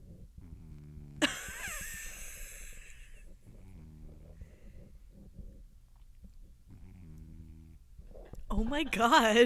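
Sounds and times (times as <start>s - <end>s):
cat snoring: 0.0s - 1.2s, 2.3s - 5.6s, 6.7s - 8.2s
speech: 8.6s - 9.4s.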